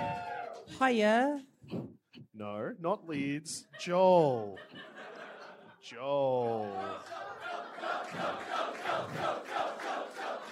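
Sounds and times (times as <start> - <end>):
crowd cheering and chanting: 0.0 - 0.8, 6.0 - 10.5
speech: 0.8 - 4.9, 5.8 - 7.2, 7.8 - 9.4
laughter: 3.5 - 10.5.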